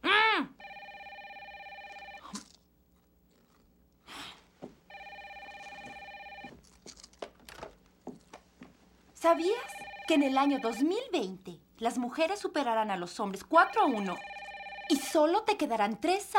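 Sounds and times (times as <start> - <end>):
telephone ringing with buzzing electronic tone: 0.6 - 2.3, 4.9 - 6.6, 9.2 - 11.2, 13.4 - 15.5
faint clicks and rustles: 5.6 - 9.2
speech: 9.2 - 14.3, 14.9 - 16.3.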